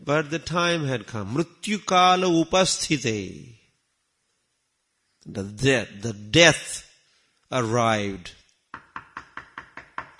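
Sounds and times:
speech: 0:00.0 - 0:03.6, 0:05.2 - 0:06.9, 0:07.5 - 0:08.4
quick crisp knocks: 0:08.7 - 0:10.1.

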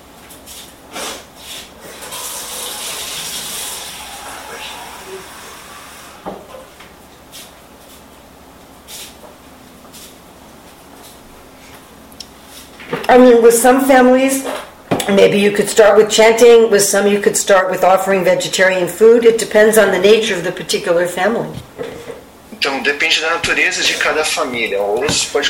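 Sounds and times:
water running from a tap: 0:01.8 - 0:06.2
speech: 0:13.1 - 0:14.5, 0:15.1 - 0:21.7, 0:22.6 - 0:25.4.

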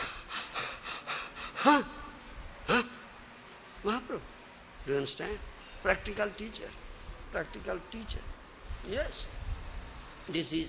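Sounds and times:
sharp voiced gasps: 0:00.0 - 0:02.0
person imitating heavy breathing: 0:00.0 - 0:02.1
speech: 0:01.6 - 0:02.0, 0:02.7 - 0:02.9, 0:03.8 - 0:09.4, 0:10.3 - 0:10.6.

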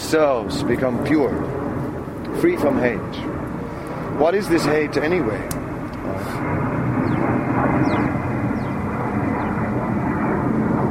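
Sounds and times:
airplane flying overhead: 0:00.0 - 0:10.8
speech: 0:00.1 - 0:01.6, 0:02.3 - 0:03.4, 0:04.1 - 0:08.2.

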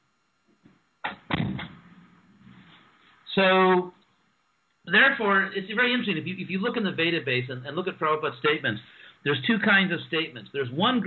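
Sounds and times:
door thudding shut: 0:01.0 - 0:01.8
soft shuffles: 0:02.4 - 0:03.3
speech: 0:03.4 - 0:04.0, 0:04.9 - 0:11.0.

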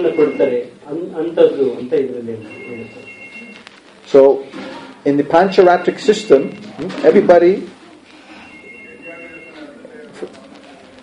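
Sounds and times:
telephone ringing outside: 0:00.0 - 0:00.8, 0:02.2 - 0:04.3, 0:05.1 - 0:06.8, 0:08.3 - 0:10.0
speech: 0:00.0 - 0:03.1, 0:04.1 - 0:07.8
low room noise: 0:00.0 - 0:11.0
soft murmur of voices: 0:00.0 - 0:11.0.

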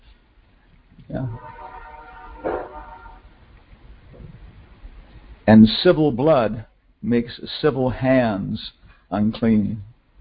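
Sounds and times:
speech: 0:01.1 - 0:01.6, 0:05.5 - 0:09.9
train horn blowing on a railroad track: 0:01.2 - 0:03.4.

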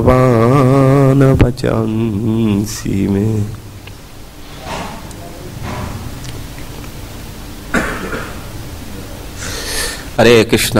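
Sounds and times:
speech: 0:00.0 - 0:00.4, 0:01.2 - 0:03.6, 0:10.2 - 0:10.7
low noise: 0:00.0 - 0:10.7
man with a phlegmy cough coughing harshly: 0:07.7 - 0:08.5.

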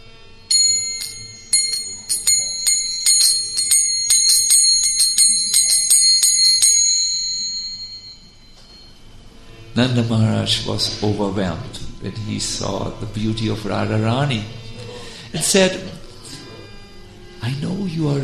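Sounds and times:
small ankle bells on anklets tinkling: 0:00.5 - 0:09.2
speech: 0:09.8 - 0:14.6, 0:15.3 - 0:16.0, 0:17.5 - 0:18.2.

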